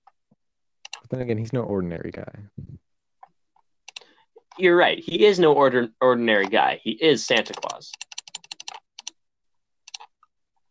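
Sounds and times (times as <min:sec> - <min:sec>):
computer keyboard clicks while typing: 0:00.8 - 0:01.1, 0:07.3 - 0:09.2, 0:09.8 - 0:10.3
speech: 0:01.1 - 0:02.8, 0:04.6 - 0:08.1.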